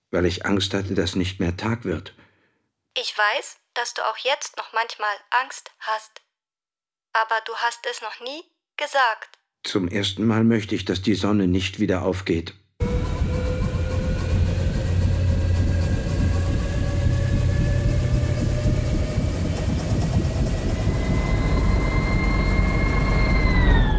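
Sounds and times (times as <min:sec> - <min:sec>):
speech: 0:00.1 - 0:02.2, 0:03.0 - 0:06.2, 0:07.1 - 0:12.6
engine drone of a heavy 70-ton aircraft cruising high in the stratosphere: 0:12.8 - 0:23.9.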